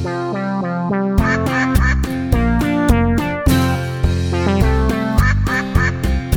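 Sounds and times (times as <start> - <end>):
upbeat children's song with plucked and percussive accompaniment: 0.1 - 3.7, 4.3 - 6.2
duck quacks, possibly imitated: 1.2 - 2.2, 5.1 - 6.1.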